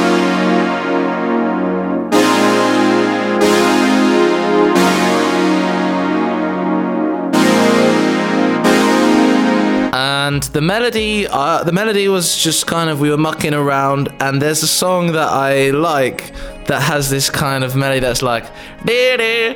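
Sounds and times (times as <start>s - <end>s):
fat thick synthesizer playing on its own: 0.0s - 11.7s
speech: 10.3s - 19.5s.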